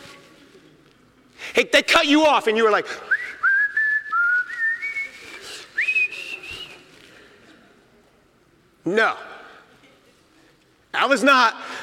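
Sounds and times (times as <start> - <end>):
speech: 1.6 - 3.1, 8.9 - 9.3, 11.0 - 11.6
person whistling a hymn tune: 3.1 - 7.0.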